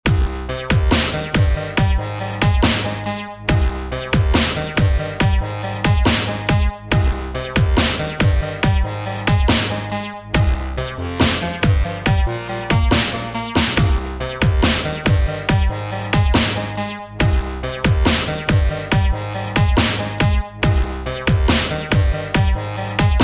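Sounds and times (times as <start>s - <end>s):
techno step beat: 0.1s - 23.2s.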